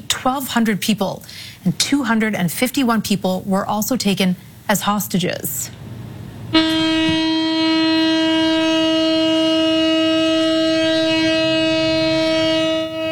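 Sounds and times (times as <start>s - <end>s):
speech: 0.2s - 5.8s, 6.5s - 7.2s
memorial siren in Tel Aviv holding a steady tone: 6.6s - 13.0s.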